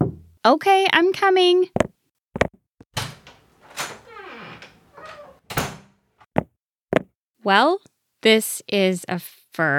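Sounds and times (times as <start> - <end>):
speech: 0.4 - 1.8, 7.4 - 9.7
studio door latch clunks: 3.0 - 5.9.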